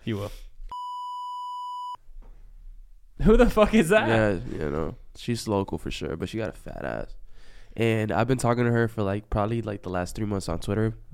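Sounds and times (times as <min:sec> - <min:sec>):
speech: 0:00.0 - 0:00.5, 0:03.2 - 0:07.2, 0:07.8 - 0:11.1
censor bleep tone over a word: 0:00.7 - 0:02.0.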